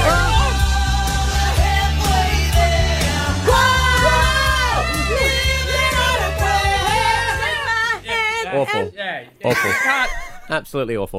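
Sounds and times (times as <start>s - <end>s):
full driving rock band playing: 0.0s - 8.0s
laughter: 3.8s - 10.6s
speech: 9.2s - 11.1s.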